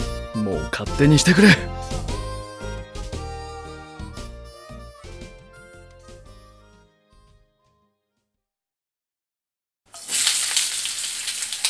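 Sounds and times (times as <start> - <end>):
melodic tune: 0.0 - 7.2
speech: 0.5 - 1.8
food frying: 9.9 - 11.6.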